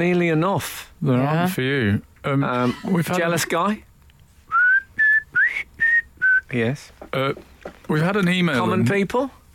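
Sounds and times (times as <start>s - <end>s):
speech: 0.0s - 3.9s, 6.5s - 9.4s
whistled notes: 4.5s - 6.5s.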